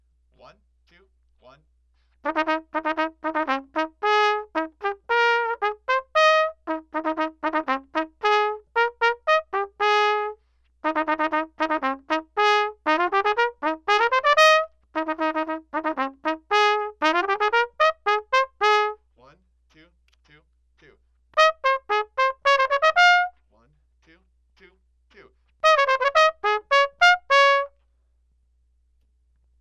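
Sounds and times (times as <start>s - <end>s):
trumpet solo of a military polka: 2.2s - 19.0s, 21.4s - 23.4s, 25.6s - 27.8s.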